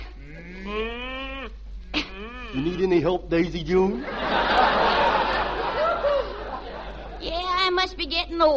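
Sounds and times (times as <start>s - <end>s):
cow mooing: 0.2s - 1.5s, 2.2s - 2.9s
speech: 2.9s - 4.4s, 8.0s - 8.5s
laughter: 3.9s - 7.2s.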